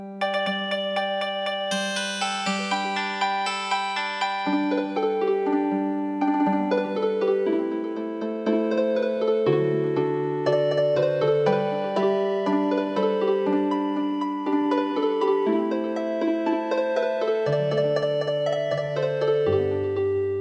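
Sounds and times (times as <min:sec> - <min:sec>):
healing harp playing a Christmas song: 0:00.2 - 0:20.3.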